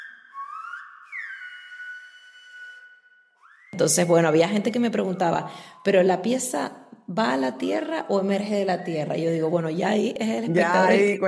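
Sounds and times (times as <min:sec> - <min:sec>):
person whistling a sliding melody: 0:00.0 - 0:04.1
speech: 0:03.8 - 0:11.2.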